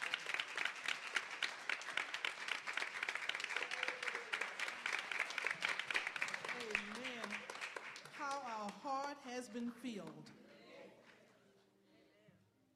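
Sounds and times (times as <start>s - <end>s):
audience clapping hands in praise: 0.0s - 9.4s
speech: 9.2s - 10.4s.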